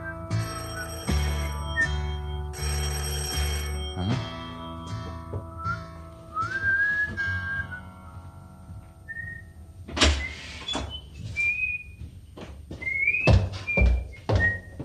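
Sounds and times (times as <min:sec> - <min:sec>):
doorbell chimes: 0:00.3 - 0:05.5
sliding whistle-like tone: 0:05.6 - 0:07.9, 0:09.1 - 0:09.5, 0:10.2 - 0:12.0, 0:12.8 - 0:14.7.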